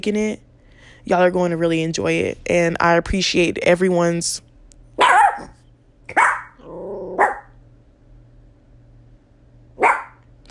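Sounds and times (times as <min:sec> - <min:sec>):
speech: 0:00.0 - 0:00.4, 0:01.0 - 0:04.4
pet dog barking: 0:05.0 - 0:07.6, 0:09.8 - 0:10.2
low rumbling dog growl: 0:06.4 - 0:07.5.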